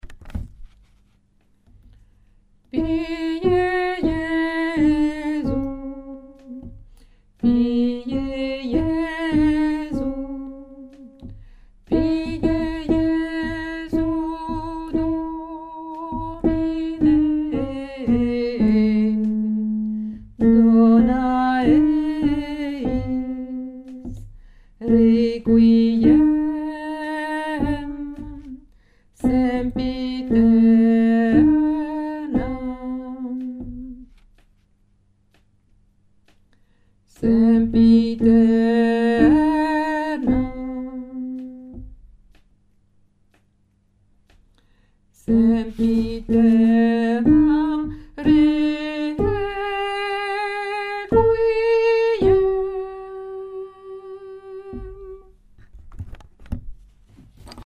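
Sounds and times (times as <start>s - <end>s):
alto voice: 2.8s - 6.8s, 7.4s - 11.3s, 11.9s - 28.6s, 29.2s - 34.1s, 37.1s - 42.0s, 45.2s - 55.4s.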